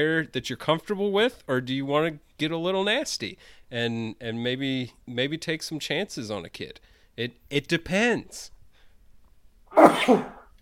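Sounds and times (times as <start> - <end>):
speech: 0.0 - 8.6, 9.7 - 10.4
sneeze: 9.7 - 10.5.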